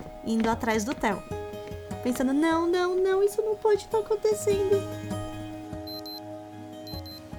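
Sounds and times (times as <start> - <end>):
speech: 0.2 - 1.4, 2.0 - 5.1
wristwatch alarm chirping in high thin electronic beeps: 5.8 - 6.2, 6.9 - 7.2.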